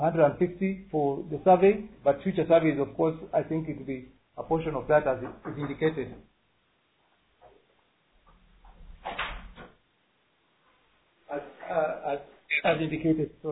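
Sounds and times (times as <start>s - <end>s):
speech: 0.0s - 6.3s, 11.3s - 13.5s
door opening with a rattle and scrape: 8.6s - 9.8s
person talking over a muffled low-quality line: 12.5s - 13.5s.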